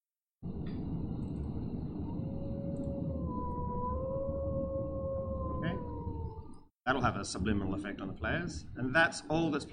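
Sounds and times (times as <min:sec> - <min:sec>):
rushing ambient background: 0:00.4 - 0:08.9
two wolves howling: 0:01.7 - 0:06.7
speech: 0:06.9 - 0:09.7.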